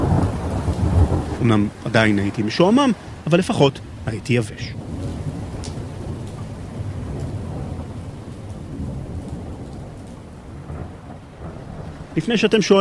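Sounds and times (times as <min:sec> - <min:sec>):
deep rumbling thunder: 0:00.0 - 0:12.7
heavy rain pouring onto a ship's deck: 0:00.0 - 0:12.7
speech: 0:01.4 - 0:04.8, 0:12.2 - 0:12.7.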